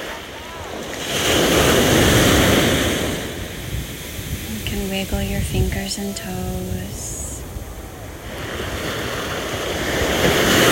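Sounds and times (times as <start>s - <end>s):
ocean surf rushing: 0.0s - 10.6s
wind: 0.0s - 10.6s
speech: 5.2s - 7.1s.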